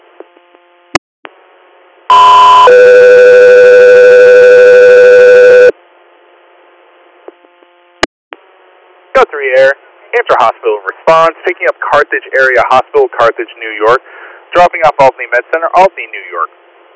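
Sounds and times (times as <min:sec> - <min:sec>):
radio dispatch alert tones before an inter-hospital response call: 0:02.1 - 0:05.7
speech: 0:09.5 - 0:16.6.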